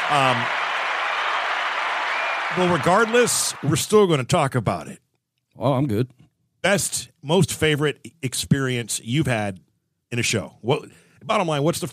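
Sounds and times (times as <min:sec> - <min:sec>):
person cheering: 0:00.0 - 0:03.8
applause: 0:00.0 - 0:04.0
speech: 0:00.1 - 0:00.6, 0:02.5 - 0:05.0, 0:05.6 - 0:11.9.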